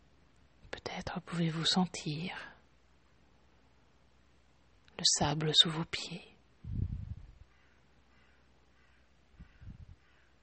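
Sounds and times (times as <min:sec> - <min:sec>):
speech: 0:01.0 - 0:02.5, 0:05.0 - 0:06.3
soft low rumble: 0:06.6 - 0:07.5, 0:09.4 - 0:10.0
faint harsh caw-like seabird calls: 0:07.5 - 0:10.4.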